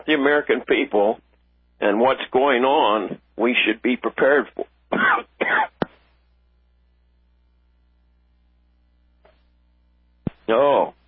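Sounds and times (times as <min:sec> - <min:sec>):
speech: 0:00.0 - 0:05.7, 0:10.5 - 0:11.0
man clearing throat: 0:04.9 - 0:05.8
man coughing: 0:04.9 - 0:05.8.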